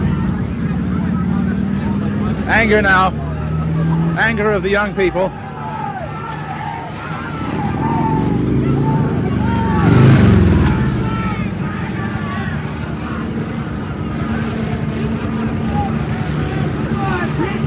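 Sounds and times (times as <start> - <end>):
busy crowd of young demonstrators on a highway: 0.0 - 17.6
small engines of police motor scooters droning on a highway: 0.0 - 17.6
voices of demonstrators talking and calling out: 0.0 - 17.6
speech: 2.5 - 3.2, 4.2 - 5.4.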